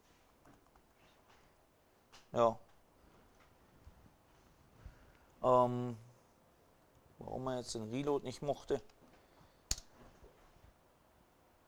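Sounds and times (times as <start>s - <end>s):
speech: 2.3s - 2.6s, 5.4s - 6.0s, 7.2s - 9.0s
computer mouse click: 9.7s - 9.9s.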